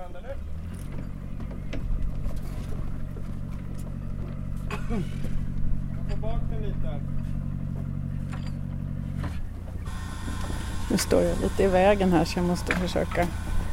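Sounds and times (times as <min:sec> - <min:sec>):
heavy engine of a boat launch tractor droning at low pitch: 0:00.0 - 0:13.7
voices: 0:00.0 - 0:13.7
speech: 0:04.9 - 0:05.4, 0:06.2 - 0:07.4, 0:10.9 - 0:13.4.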